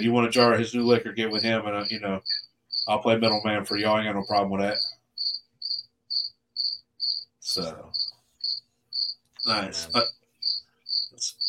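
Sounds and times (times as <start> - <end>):
speech: 0.0 - 5.0, 7.5 - 8.2, 9.4 - 10.2, 11.2 - 11.4
cricket chirping at night: 0.4 - 11.4.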